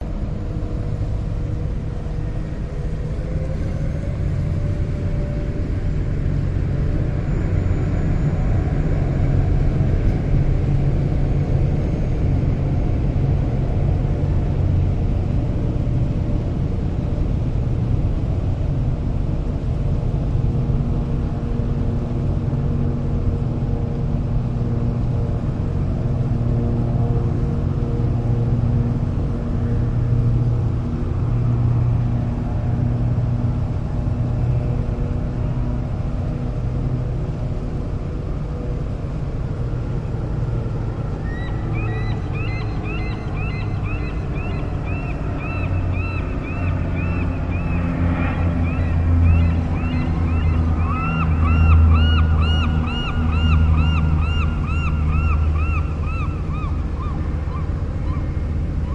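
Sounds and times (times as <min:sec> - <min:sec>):
boats at Lonsdale Quay in Vancouver: 0:00.0 - 0:58.9
planes over Lonsdale Quay in Vancouver: 0:00.0 - 0:58.9
water at Lonsdale Quay dock in Vancouver: 0:00.0 - 0:58.9
seagulls at Lonsdale Quay in Vancouver: 0:41.2 - 0:58.9.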